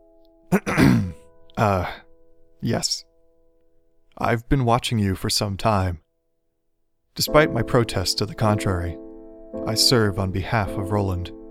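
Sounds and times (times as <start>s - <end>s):
man clearing his throat: 0.5s - 2.0s
speech: 1.6s - 2.0s, 2.6s - 3.1s, 4.2s - 6.0s, 7.2s - 11.4s.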